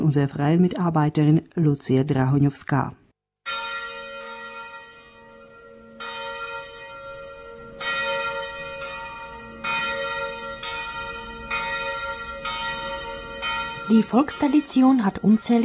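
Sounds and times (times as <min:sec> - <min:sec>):
speech: 0:00.1 - 0:03.6, 0:13.9 - 0:15.6
church bells ringing in a steady peal: 0:03.5 - 0:15.6.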